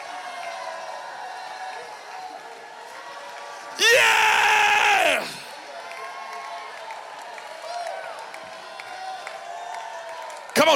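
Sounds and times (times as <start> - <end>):
large church audience shouting and cheering: 0.0 - 10.7.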